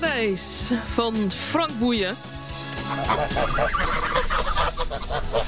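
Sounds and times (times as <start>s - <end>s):
speech: 0.2s - 5.4s
flock of geese honking: 2.7s - 5.4s.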